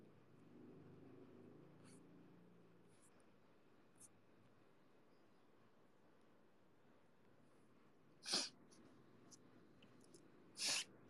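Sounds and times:
faint noise: 0.0s - 11.0s
sniffing through the nose: 8.2s - 8.6s, 10.6s - 10.9s.

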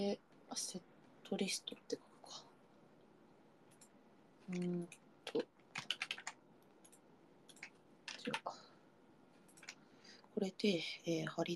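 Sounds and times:
speech: 0.0s - 2.5s, 4.5s - 5.5s, 8.2s - 8.7s, 10.4s - 11.5s
light keystrokes on a computer keyboard: 4.5s - 8.6s, 9.5s - 9.8s.

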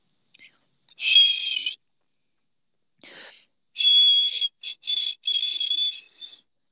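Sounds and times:
feeble breathy mouth whistling through the lips: 0.4s - 1.8s, 3.0s - 6.5s.

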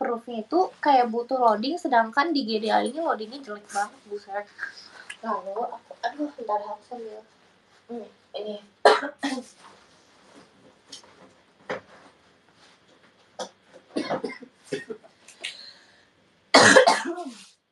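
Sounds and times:
speech: 0.2s - 9.8s, 14.1s - 15.0s
harsh rasping coughs from one person: 13.4s - 15.0s, 16.6s - 17.4s.

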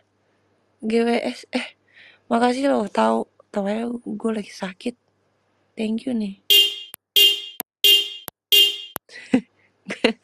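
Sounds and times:
speech: 0.8s - 5.0s, 5.8s - 6.5s
neighbour's car horn honking: 6.5s - 9.0s.

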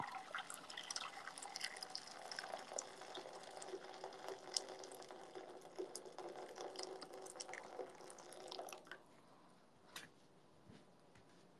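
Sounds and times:
freshly boiled hot water pouring into a frying pan for ramen: 0.0s - 8.9s.

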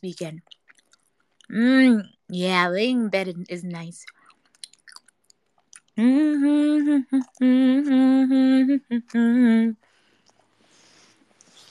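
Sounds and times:
speech: 0.0s - 0.6s, 1.5s - 4.2s, 6.0s - 9.8s
person humming mmm imitating chewing food: 5.9s - 9.8s.

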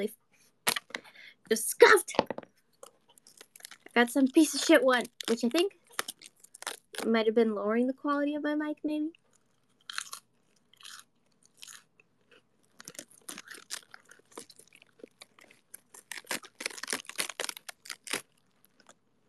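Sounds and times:
speech: 0.0s - 0.2s, 1.5s - 2.4s, 4.0s - 5.8s, 7.0s - 9.2s
lettuce leaves being ripped apart: 12.8s - 18.4s.

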